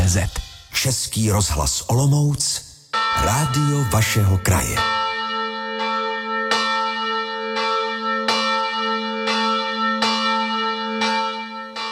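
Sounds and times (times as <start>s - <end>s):
speech: 0.1s - 5.0s
monastery church bell tolling for Sunday noon in Šumperk: 2.9s - 11.8s.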